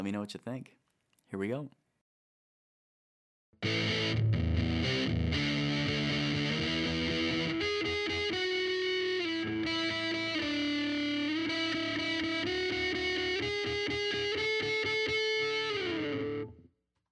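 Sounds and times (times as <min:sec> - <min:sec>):
speech: 0:00.0 - 0:01.8, 0:03.6 - 0:04.3
electric guitar played through a Big Muff fuzz pedal: 0:03.6 - 0:16.6.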